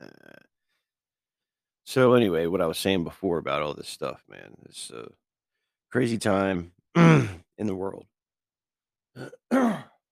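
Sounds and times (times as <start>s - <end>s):
speech: 1.9s - 5.2s, 5.9s - 8.1s, 9.2s - 9.8s
man clearing his throat: 7.0s - 7.4s, 9.2s - 10.0s.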